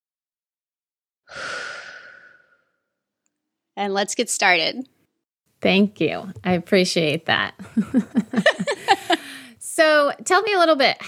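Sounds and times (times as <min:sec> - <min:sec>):
deep breath taken with eyes closed: 0:01.3 - 0:02.9, 0:08.9 - 0:09.6
speech: 0:03.8 - 0:05.0, 0:05.6 - 0:08.8, 0:09.8 - 0:11.0
laughter: 0:07.6 - 0:09.4.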